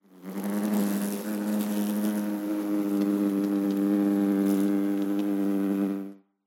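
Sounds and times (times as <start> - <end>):
flies buzzing: 0.0 - 6.2.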